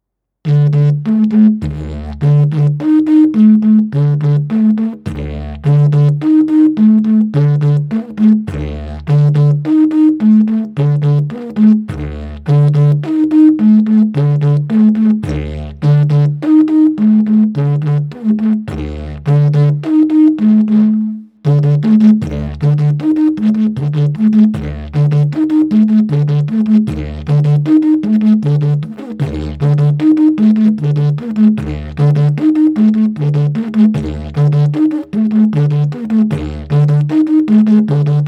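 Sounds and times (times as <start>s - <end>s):
advanced-level rhythm: 0.7s - 38.2s.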